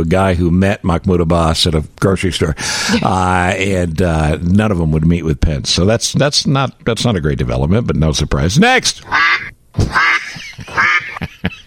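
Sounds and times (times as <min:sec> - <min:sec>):
speech: 0:00.0 - 0:10.4
duck quacking: 0:09.1 - 0:11.2.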